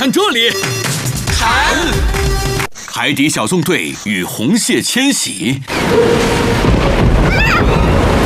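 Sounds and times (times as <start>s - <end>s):
speech: 0.1s - 2.1s, 2.9s - 8.2s
storm wind roaring at sea: 5.7s - 8.2s.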